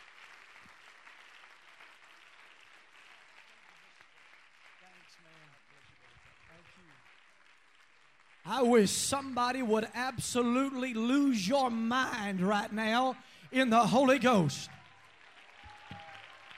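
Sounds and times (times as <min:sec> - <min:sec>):
audience clapping: 0:00.0 - 0:16.5
speech: 0:08.5 - 0:14.8
people calling out and cheering: 0:08.5 - 0:16.5.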